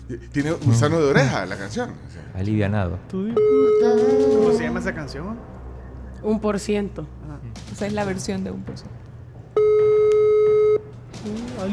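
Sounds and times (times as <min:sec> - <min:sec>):
low hum: 0:00.0 - 0:11.7
speech: 0:00.1 - 0:05.6, 0:06.2 - 0:09.1, 0:11.2 - 0:11.7
telephone ringback tone of an unanswered call: 0:03.4 - 0:04.6, 0:09.6 - 0:10.8.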